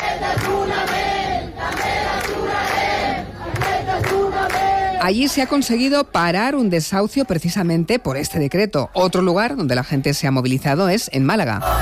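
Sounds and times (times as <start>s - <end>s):
protest encampment crowd chanting a slogan: 0.0s - 5.4s, 11.6s - 11.8s
speech: 0.2s - 1.1s, 4.4s - 11.8s.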